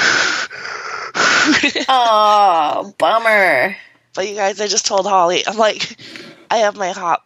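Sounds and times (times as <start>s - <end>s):
voice imitating heavy raspy respirator-like breathing: 0.0s - 1.6s
speech: 1.6s - 7.2s.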